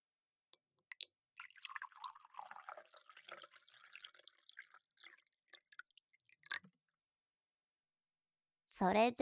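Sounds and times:
drink pouring into a glass: 0:01.3 - 0:06.8
speech: 0:08.8 - 0:09.2.

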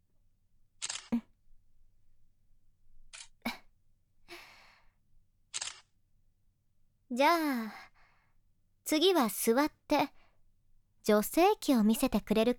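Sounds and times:
camera shutter clicks as photos are taken: 0:00.8 - 0:01.1, 0:05.5 - 0:05.9
speech: 0:07.1 - 0:07.8, 0:08.9 - 0:10.2, 0:11.0 - 0:12.5.

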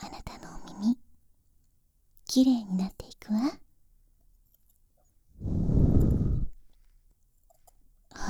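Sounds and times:
speech: 0:02.3 - 0:03.6
soft breathy exhale blown into the ear: 0:05.4 - 0:06.6.

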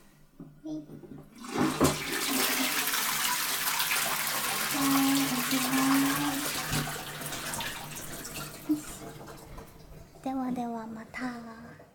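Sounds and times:
toilet flushing: 0:01.2 - 0:11.9.

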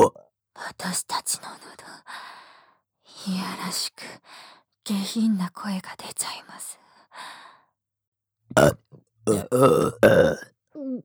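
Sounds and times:
loud deep gurgly burps: 0:00.0 - 0:00.2, 0:08.5 - 0:10.5
speech: 0:00.0 - 0:02.2, 0:03.2 - 0:07.4, 0:08.5 - 0:11.0.

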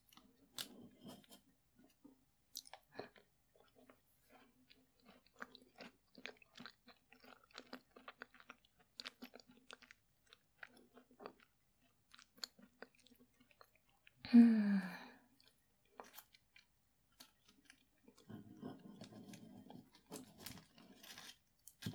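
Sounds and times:
chewing tart crust: 0:00.0 - 0:14.2, 0:15.3 - 0:21.9
person murmuring: 0:14.3 - 0:15.1.

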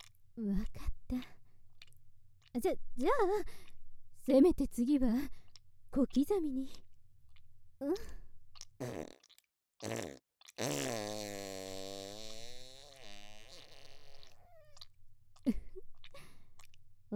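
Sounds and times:
speech: 0:00.4 - 0:01.3, 0:02.6 - 0:06.8, 0:07.8 - 0:08.2, 0:08.8 - 0:09.2, 0:09.8 - 0:11.6
farts: 0:08.8 - 0:14.8.

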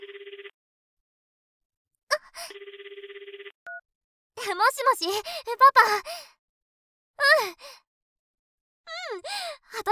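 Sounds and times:
telephone ringing with a fast trilling bell: 0:00.0 - 0:00.6, 0:02.4 - 0:03.8
speech: 0:04.5 - 0:06.3, 0:07.2 - 0:07.8, 0:09.1 - 0:09.9.

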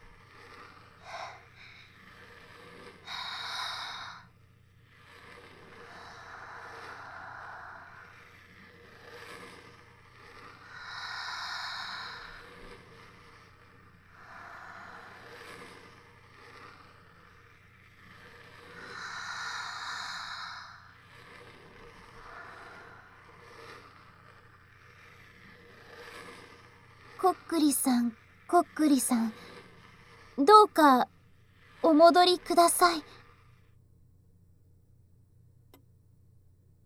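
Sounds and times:
people breathing deeply together: 0:00.8 - 0:17.4, 0:18.4 - 0:24.6
speech: 0:27.2 - 0:29.4, 0:30.4 - 0:31.1, 0:31.9 - 0:33.1.

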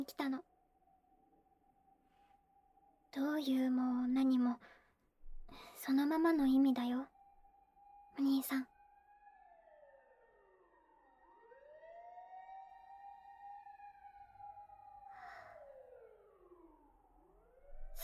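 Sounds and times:
speech: 0:00.0 - 0:00.5, 0:03.1 - 0:04.8, 0:05.5 - 0:07.1, 0:08.2 - 0:08.7
fire engine sirens wailing in rising and falling sweeps: 0:09.0 - 0:17.7.

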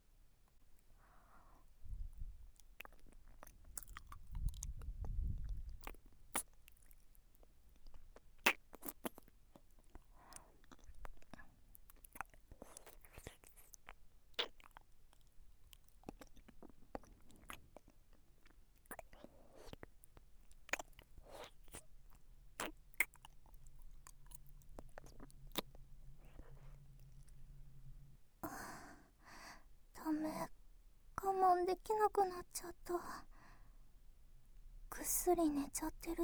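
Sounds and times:
chewing and crunching food: 0:02.2 - 0:27.6
wet mouth clicks: 0:02.5 - 0:27.6
speech: 0:30.2 - 0:30.5, 0:31.5 - 0:33.3, 0:35.1 - 0:36.2.

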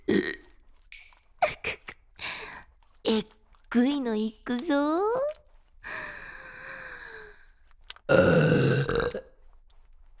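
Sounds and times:
burp: 0:00.0 - 0:00.5, 0:08.1 - 0:09.3
throaty bursts: 0:00.0 - 0:00.6, 0:08.1 - 0:09.3
speech: 0:03.1 - 0:05.4.

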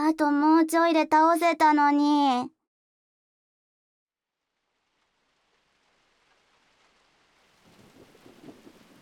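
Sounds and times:
speech: 0:00.2 - 0:02.6
steady rain and heavy downpour: 0:04.6 - 0:09.0
deep thunder rumble: 0:07.6 - 0:09.0.

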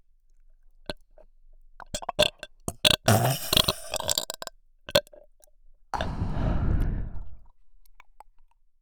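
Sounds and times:
wet mouth clicks and smacking sounds: 0:01.8 - 0:05.2, 0:06.0 - 0:06.9
short gulping burst: 0:02.2 - 0:04.2
long loud deep burp by a girl: 0:02.9 - 0:04.2.

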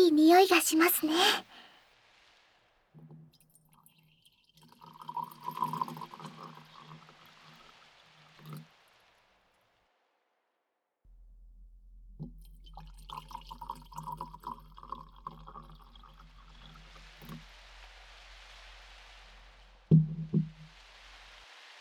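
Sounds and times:
speech: 0:00.1 - 0:01.5
hot well water poured for tea: 0:03.5 - 0:09.7, 0:12.4 - 0:19.9, 0:20.6 - 0:21.7.

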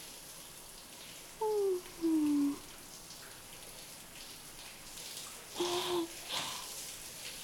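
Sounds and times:
shower water spraying and rinsing off soap: 0:00.0 - 0:07.4
person humming or murmuring: 0:01.4 - 0:02.6, 0:05.6 - 0:06.1.

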